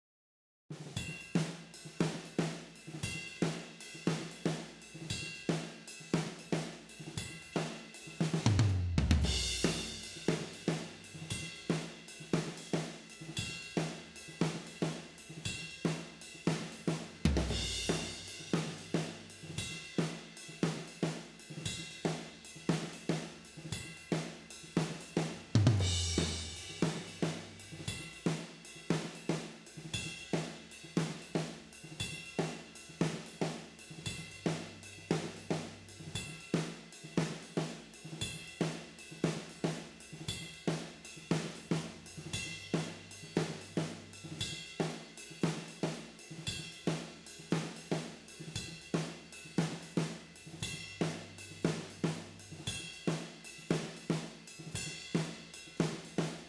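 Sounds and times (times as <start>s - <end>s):
tom drums: 0.7s - 56.4s.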